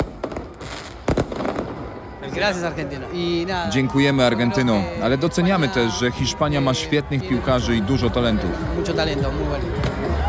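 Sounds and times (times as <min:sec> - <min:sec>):
firework bangs in a street celebration: 0:00.0 - 0:03.1
crowd cheering and chatter in a street: 0:00.0 - 0:10.2
speech: 0:02.2 - 0:10.2.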